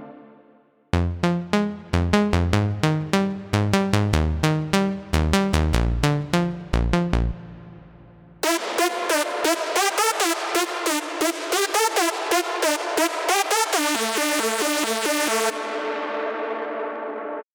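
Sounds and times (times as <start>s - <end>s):
future bass melodic trap music: 1.0s - 7.6s, 8.4s - 17.4s.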